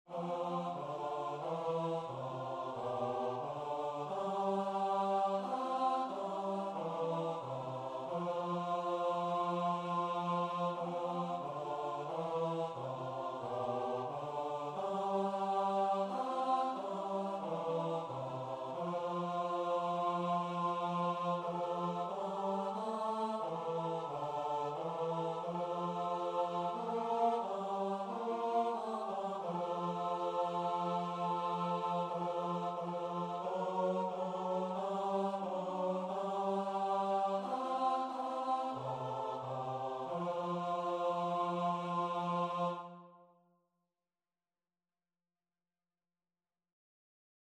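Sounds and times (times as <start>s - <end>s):
bass voices singing a choral arrangement: 0.1s - 43.0s.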